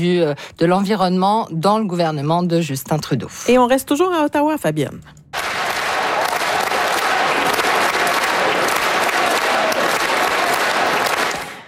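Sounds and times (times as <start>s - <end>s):
speech: 0.0s - 5.2s
federal members of parliament in Ottawa applauding Olympic and Paralympic athletes: 5.4s - 11.6s.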